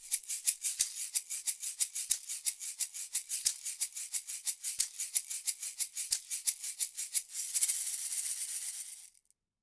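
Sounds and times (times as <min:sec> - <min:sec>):
shaker recorded with AKG C214 microphone: 0:00.0 - 0:09.3.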